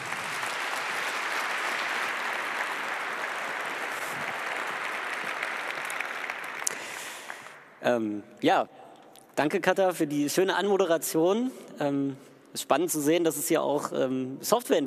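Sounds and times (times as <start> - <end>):
audience applauding: 0.0 - 7.8
speech: 7.8 - 8.8, 9.4 - 14.8.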